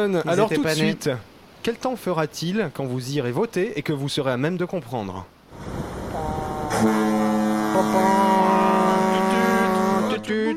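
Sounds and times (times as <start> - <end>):
speech: 0.0 - 5.8, 6.7 - 7.1, 7.8 - 8.7, 10.3 - 10.5
faint rumble of the harbour of Brest: 0.0 - 10.5
several deep foghorns of the port of Brest blaring together: 6.1 - 10.5.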